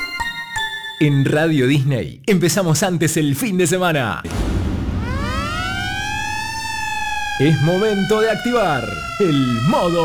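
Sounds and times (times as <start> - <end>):
speech: 1.0 - 4.6, 7.4 - 10.0
siren sound effect played as a radio station jingle: 4.3 - 10.0.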